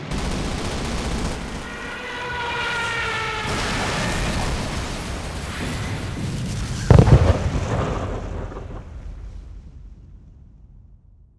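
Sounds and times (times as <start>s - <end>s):
plane going down: 0.1s - 8.9s.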